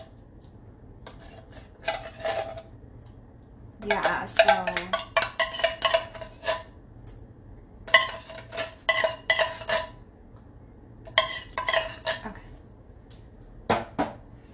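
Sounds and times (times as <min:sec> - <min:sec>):
metal utensil stirring food with tomatoes in a pan: 0:01.0 - 0:02.7, 0:03.8 - 0:06.8, 0:07.8 - 0:10.0, 0:11.0 - 0:12.4
speech: 0:03.8 - 0:05.0.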